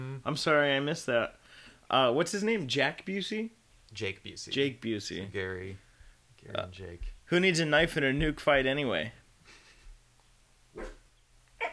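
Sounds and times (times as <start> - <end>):
speech: 0.2 - 5.8, 6.4 - 9.2, 10.8 - 11.0
dog barking: 10.8 - 11.0, 11.6 - 11.7.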